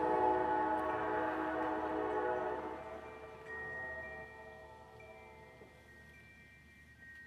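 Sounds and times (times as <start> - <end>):
train horn sounding a loud multi-tone blast: 0.0 - 4.7
rumbling rail noise of a passing train: 0.0 - 7.2.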